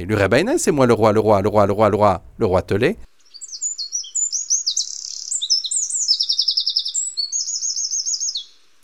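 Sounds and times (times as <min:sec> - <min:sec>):
speech: 0:00.0 - 0:03.1
small wren-like songbird singing trills and chirps: 0:02.5 - 0:08.7.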